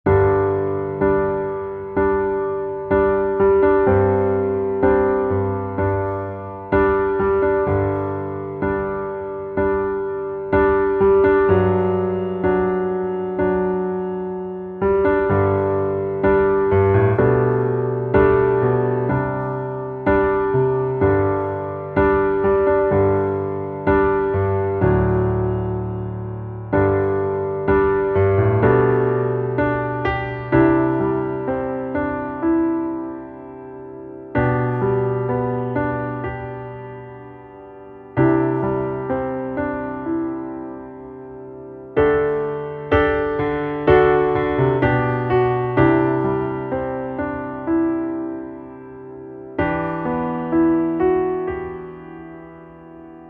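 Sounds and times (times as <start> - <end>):
underscore piano: 0.0 - 53.2.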